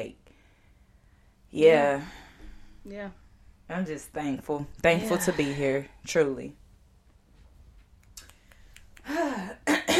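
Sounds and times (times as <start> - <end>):
speech: 1.5 - 2.2, 2.8 - 6.6
person clearing throat: 9.3 - 9.9.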